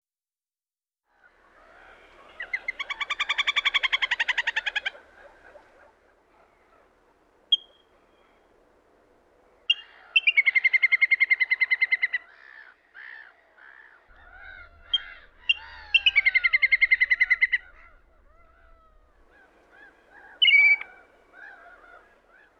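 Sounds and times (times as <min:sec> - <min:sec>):
little grebe calling: 0:01.8 - 0:05.6, 0:07.5 - 0:07.8, 0:09.7 - 0:22.5.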